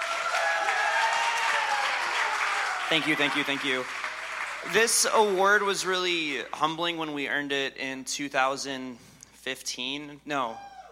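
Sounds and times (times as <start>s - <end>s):
audience applause at an awards event: 0.0s - 6.5s
speech: 2.9s - 10.9s.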